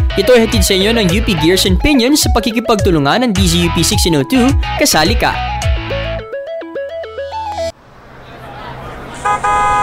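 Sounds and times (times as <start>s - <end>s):
speech: 0.2s - 5.7s
jeepney engine rumbling: 7.7s - 9.8s
jeepney horn honking steadily: 8.3s - 9.8s
jeepney horn playing a stepped multi-note tune: 9.2s - 9.8s.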